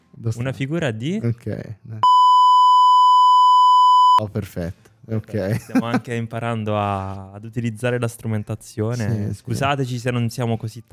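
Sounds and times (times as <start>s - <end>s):
speech: 0.2s - 2.2s, 4.2s - 10.9s
censor beep tone: 2.0s - 4.2s.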